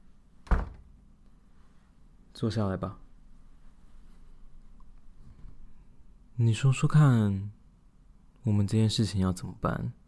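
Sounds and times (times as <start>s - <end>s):
door being pushed shut: 0.4s - 0.9s
speech: 2.4s - 3.0s, 6.4s - 7.6s, 8.4s - 10.0s.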